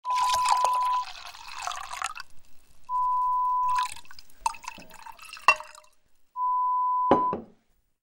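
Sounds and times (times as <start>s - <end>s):
wine pouring: 0.0s - 6.3s.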